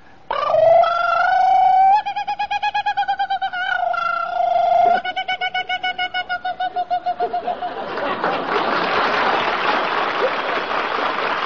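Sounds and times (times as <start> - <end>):
man imitating a kookaburra call: 0.3 - 7.5
laughter: 6.5 - 11.3.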